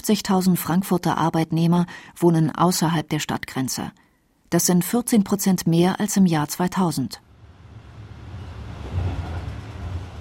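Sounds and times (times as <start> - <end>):
speech: 0.0 - 7.3
moving commuter train rumbling heard from inside a carriage: 7.2 - 10.1.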